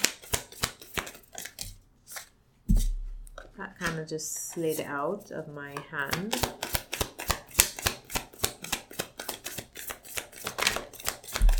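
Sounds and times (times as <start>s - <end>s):
tarot cards being shuffled: 0.0s - 4.9s, 5.7s - 11.5s
speech: 3.8s - 6.8s
tarot deck settling with a soft thump: 11.4s - 11.5s.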